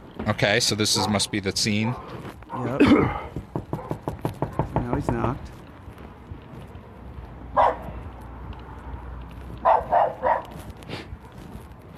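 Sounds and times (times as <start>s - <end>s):
speech: 0.2s - 3.2s, 5.0s - 5.6s
dogs barking: 3.6s - 4.8s, 7.5s - 8.2s, 9.4s - 11.8s.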